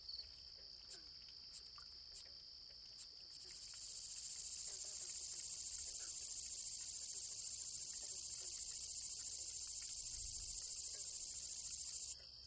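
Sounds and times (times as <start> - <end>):
gladiator meadow katydid ticking: 0.2 - 12.2
gladiator meadow katydid high-pitched buzz: 3.4 - 12.2.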